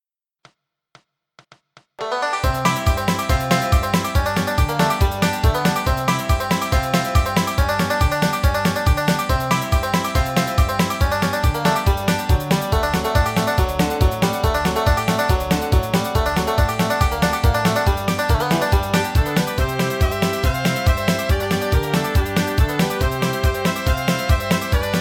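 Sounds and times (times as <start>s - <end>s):
bluegrass banjo: 2.0s - 24.9s
fiddle in G: 2.0s - 24.9s.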